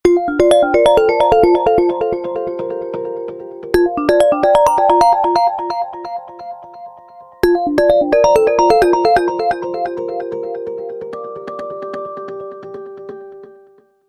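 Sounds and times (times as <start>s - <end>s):
Lumia 800 phone ringtone: 0.1s - 3.2s, 3.8s - 10.9s.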